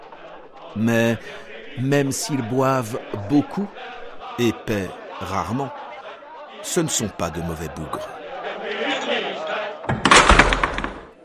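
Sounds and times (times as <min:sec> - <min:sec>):
laughter: 0:00.0 - 0:09.9
murmur of voices: 0:00.0 - 0:09.9
speech: 0:00.7 - 0:05.8, 0:06.6 - 0:08.2
door flung open with a loud slam: 0:09.8 - 0:11.2
brief clattering rattle: 0:09.9 - 0:11.2.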